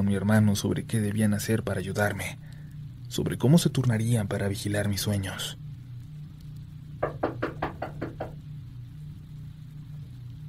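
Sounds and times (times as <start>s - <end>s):
low steady hum: 0.0s - 10.4s
speech: 0.1s - 2.5s, 3.1s - 5.6s
quick firm knocks on a door: 7.0s - 8.4s.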